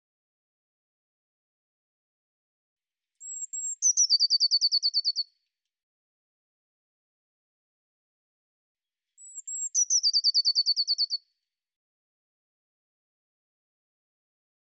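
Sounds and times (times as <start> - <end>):
Eurasian blue tit calling with high notes and churring trill: 3.2 - 5.2, 9.2 - 11.2.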